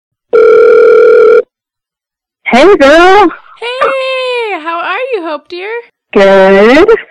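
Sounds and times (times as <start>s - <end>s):
telephone dial tone while placing a phone call: 0.3s - 1.4s
speech: 2.5s - 7.0s.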